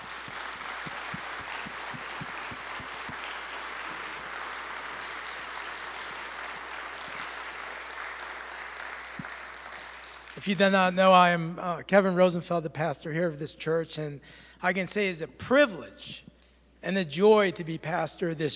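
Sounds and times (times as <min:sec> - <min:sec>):
crowd clapping: 0:00.0 - 0:10.8
speech: 0:10.4 - 0:18.5.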